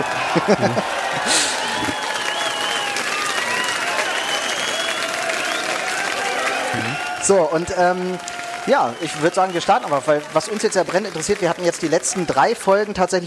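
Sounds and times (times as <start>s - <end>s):
laughter: 0.0s - 2.2s
large crowd applauding, played in as a recording: 0.0s - 13.2s
speech: 0.4s - 1.4s, 6.8s - 13.2s
whistles: 1.4s - 5.8s, 8.7s - 9.9s.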